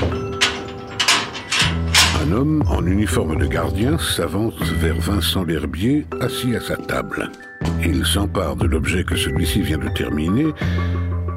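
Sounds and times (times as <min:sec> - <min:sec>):
door opening with mechanical clacks and rattles: 0:00.0 - 0:02.5
speech: 0:02.3 - 0:11.0.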